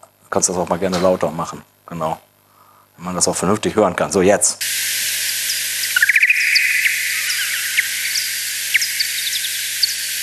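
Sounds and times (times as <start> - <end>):
steady hiss: 0.0 - 10.2
speech: 0.3 - 2.3, 3.0 - 4.8
male bat courtship social calls and echolocation calls slowed down ten times: 4.6 - 10.2.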